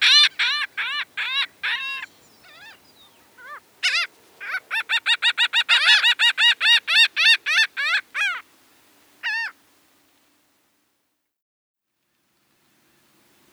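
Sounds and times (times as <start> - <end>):
laughing gull giving a long laughing series of nasal ha notes: 0.0 - 8.4, 9.2 - 9.5.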